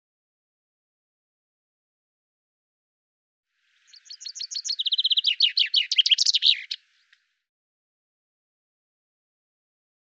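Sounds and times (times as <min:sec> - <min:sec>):
common chaffinch singing: 0:03.7 - 0:07.4
faint click: 0:07.1 - 0:07.3.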